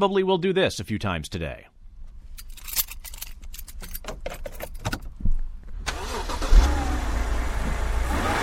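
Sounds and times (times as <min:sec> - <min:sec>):
speech: 0:00.0 - 0:01.7
keys jingling: 0:02.3 - 0:05.2
car engine cranking, catching and revving: 0:05.8 - 0:08.4.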